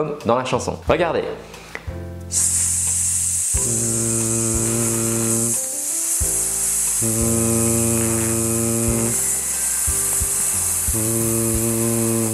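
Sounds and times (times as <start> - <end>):
speech: 0.0 - 2.6, 7.0 - 7.8
person holding a hissed s switching voicing on and off: 2.3 - 12.3.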